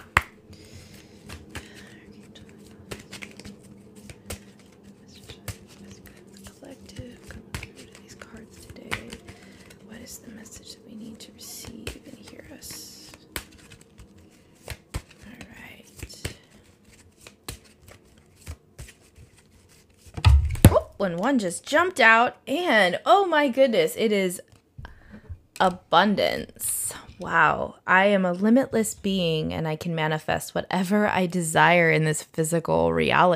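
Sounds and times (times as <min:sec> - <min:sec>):
shuffling a deck of cards: 0:00.0 - 0:20.7
speech: 0:21.0 - 0:24.4, 0:25.6 - 0:26.6, 0:27.2 - 0:33.3.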